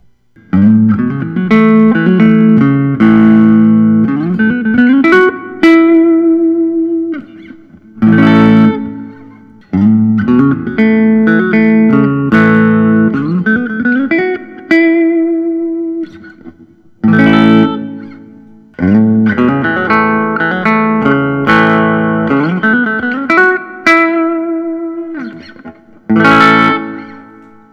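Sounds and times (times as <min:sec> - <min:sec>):
Gibson Custom 59 Les Paul reissue electric guitar: 0:00.0 - 0:27.7.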